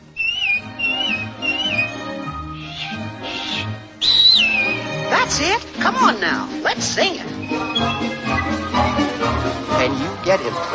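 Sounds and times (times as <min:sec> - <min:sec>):
person whistling a short bright melodic phrase: 0:00.2 - 0:02.1, 0:04.0 - 0:05.0, 0:07.4 - 0:08.6
speech: 0:05.3 - 0:10.7.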